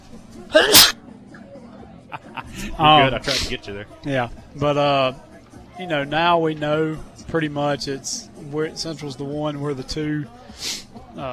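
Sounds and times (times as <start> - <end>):
loud sneeze: 0.5 - 1.0
laughter: 1.6 - 3.5
speech: 2.4 - 11.3.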